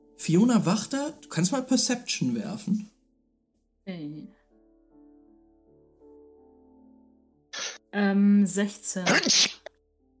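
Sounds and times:
speech: 0.2s - 2.9s, 7.9s - 9.6s
person sneezing: 7.6s - 7.8s, 9.0s - 9.7s.

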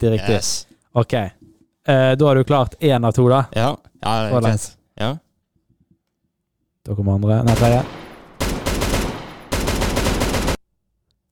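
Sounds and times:
speech: 0.0s - 5.2s, 6.9s - 8.0s
large machine gun firing in a video game: 7.5s - 10.6s.

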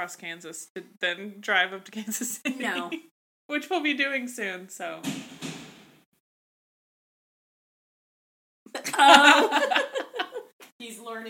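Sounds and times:
speech: 0.0s - 5.4s, 9.0s - 9.5s
laughter: 2.1s - 3.1s, 8.7s - 10.5s
wooden dining room chairs thrown onto the floor: 5.0s - 6.0s.

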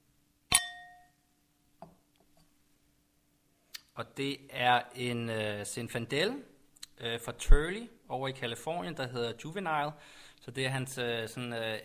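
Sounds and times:
wine glasses clinking in a toast: 0.5s - 1.2s
speech: 4.0s - 11.8s.

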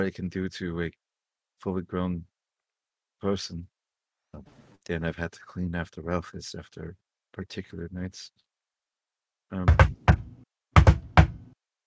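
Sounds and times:
speech: 0.0s - 1.0s, 1.6s - 2.3s, 3.2s - 3.7s, 4.4s - 8.5s, 9.5s - 10.0s
someone rapping on a door: 9.6s - 11.6s.

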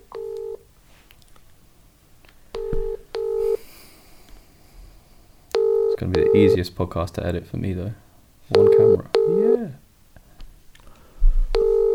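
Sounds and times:
electronic phone-call dialing and ringing tones: 0.1s - 0.6s, 2.6s - 3.6s, 5.6s - 6.6s, 8.5s - 9.8s, 11.6s - 11.9s
speech: 6.0s - 8.6s.

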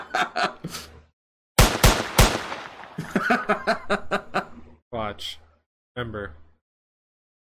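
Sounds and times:
laughter: 0.0s - 0.8s, 3.0s - 4.7s
gunshots from a double-barrelled gun: 1.6s - 3.4s.

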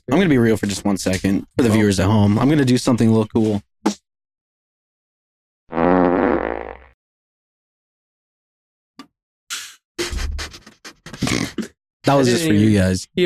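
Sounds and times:
speech: 0.1s - 4.0s, 12.1s - 13.2s
buzzy fart-like noise: 5.7s - 7.0s.

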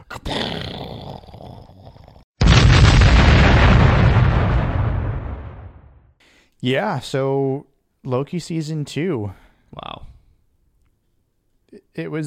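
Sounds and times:
deep explosion blast: 2.4s - 6.2s
speech: 6.6s - 10.0s, 11.7s - 12.2s.

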